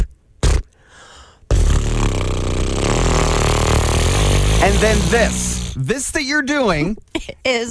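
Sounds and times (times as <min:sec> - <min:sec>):
lips imitating a lawnmower starting: 0:01.5 - 0:05.9
speech: 0:04.6 - 0:07.6.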